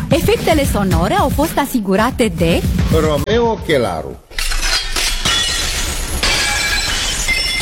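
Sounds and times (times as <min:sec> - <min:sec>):
speech: 0:00.1 - 0:04.3
glass shattering with tinkling fragments: 0:04.3 - 0:07.6.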